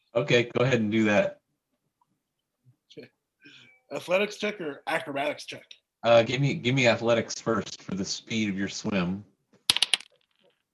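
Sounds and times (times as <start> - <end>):
speech: 0.2 - 1.4, 2.9 - 3.2, 3.9 - 9.3
dice rolling on a table during a tabletop roleplaying game: 9.7 - 10.6.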